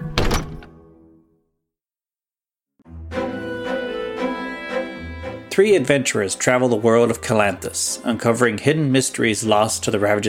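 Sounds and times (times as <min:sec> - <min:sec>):
heavy door opening thunk: 0:00.0 - 0:00.8
steady music: 0:00.0 - 0:01.5, 0:02.8 - 0:10.2
speech: 0:05.6 - 0:10.2.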